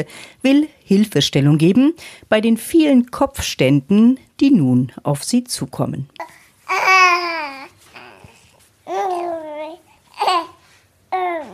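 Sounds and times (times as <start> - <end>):
speech: 0.0 - 6.4
happy baby babbling and giggling: 6.2 - 11.5.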